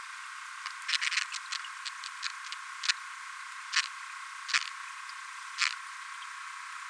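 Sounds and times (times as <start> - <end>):
Opsodoras stuebelii sounds: 0.6 - 3.1, 3.7 - 6.4.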